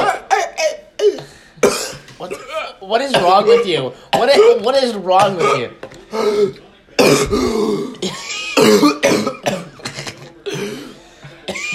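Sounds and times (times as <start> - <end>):
person coughing and choking: 0.0 - 5.8, 7.0 - 11.7
speech: 1.6 - 9.6.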